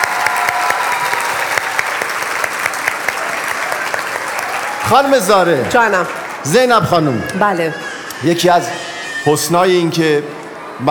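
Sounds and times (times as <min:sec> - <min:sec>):
large audience applauding: 0:00.0 - 0:07.8
speech: 0:04.9 - 0:10.8.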